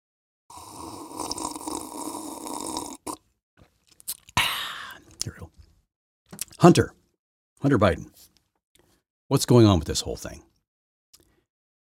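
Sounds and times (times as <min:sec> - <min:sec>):
wet slurping and sipping a drink: 0:00.5 - 0:04.4
short gulps or mouth clicks: 0:00.7 - 0:03.3
speech: 0:06.6 - 0:07.0, 0:07.6 - 0:08.3, 0:09.3 - 0:10.5.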